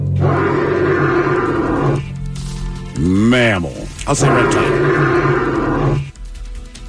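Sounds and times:
Australian bustard deep rumbling roar-like calls: 0.1s - 2.1s, 4.1s - 6.1s
speech: 3.6s - 5.2s.

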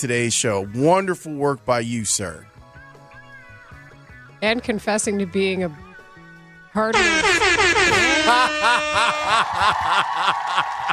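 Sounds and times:
speech: 0.0s - 2.6s, 4.4s - 5.9s, 6.8s - 10.9s
air horn blast: 6.9s - 9.6s
laughter: 7.9s - 10.9s.

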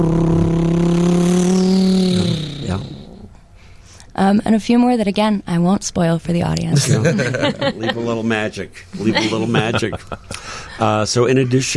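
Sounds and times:
speech: 0.0s - 0.8s, 4.3s - 11.7s
car engine driving off and accelerating: 0.0s - 3.3s
laughter: 6.8s - 8.3s, 9.0s - 10.9s.

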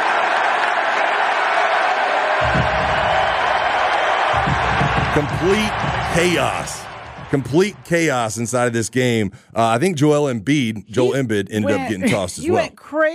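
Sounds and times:
packed basketball arena crowd cheering: 0.0s - 9.2s
speech: 5.2s - 13.1s.

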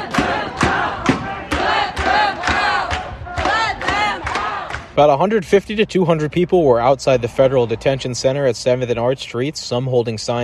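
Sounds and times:
large protest crowd shouting together in rhythmic bursts: 0.0s - 5.0s
speech: 5.0s - 10.4s.

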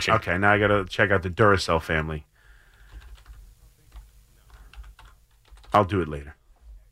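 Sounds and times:
speech: 0.0s - 2.3s, 5.7s - 6.4s
low hum: 0.0s - 6.9s
fingers typing on a computer keyboard: 2.7s - 5.8s.

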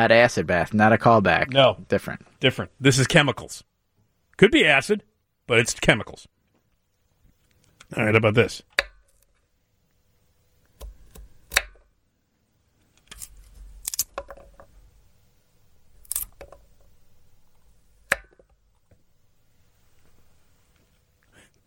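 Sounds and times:
speech: 0.0s - 3.7s, 4.4s - 6.3s, 7.9s - 8.7s
sharp wet chopping strikes: 10.8s - 11.8s.

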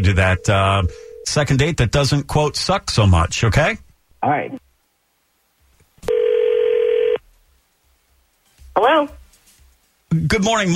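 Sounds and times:
single steady electronic telephone ring: 0.0s - 1.3s, 6.1s - 7.2s
speech: 0.0s - 4.6s, 10.1s - 10.7s
quiet telephone line hiss: 0.0s - 10.7s.

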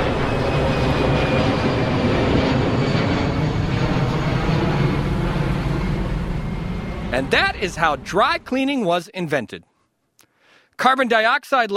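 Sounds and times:
airplane roaring overhead: 0.0s - 8.8s
speech: 7.2s - 9.7s, 10.8s - 11.7s.

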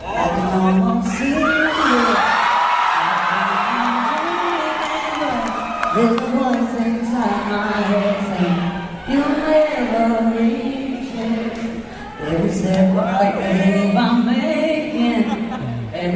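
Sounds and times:
concert audience yelling and shouting at a female performer: 0.0s - 14.3s
laughter: 14.9s - 15.9s.

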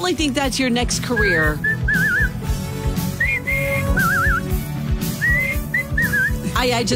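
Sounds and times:
speech: 0.1s - 2.1s, 6.6s - 6.9s
person whistling a lilting tune with trills: 1.2s - 2.4s, 3.1s - 4.5s, 5.2s - 6.4s.

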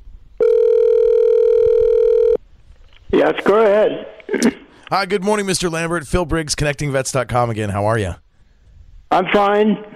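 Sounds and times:
telephone ringback tone as a call is placed for an interview: 0.4s - 2.4s
speech: 3.2s - 8.2s, 9.1s - 9.9s.

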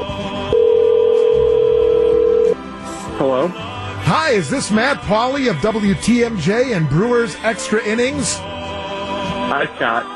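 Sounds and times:
outgoing phone call ringback tone: 0.5s - 2.6s
speech: 3.2s - 8.7s, 9.5s - 10.1s.

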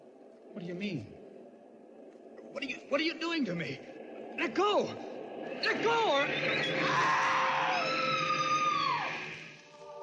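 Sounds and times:
speech: 0.6s - 1.2s, 2.6s - 7.3s
woman screaming: 6.8s - 9.3s.

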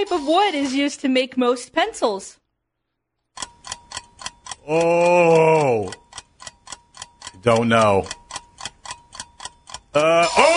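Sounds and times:
quiz timer ticking: 0.0s - 0.8s, 3.3s - 10.5s
speech: 0.0s - 2.4s, 4.7s - 6.0s, 7.4s - 8.2s, 10.0s - 10.5s.

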